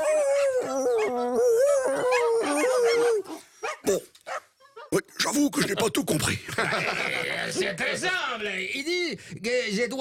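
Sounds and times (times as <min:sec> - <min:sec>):
several dogs howling together: 0:00.0 - 0:03.4
dogs yipping and whimpering: 0:00.0 - 0:05.0
speech: 0:03.9 - 0:04.2, 0:04.9 - 0:09.9
laughter: 0:06.4 - 0:08.2.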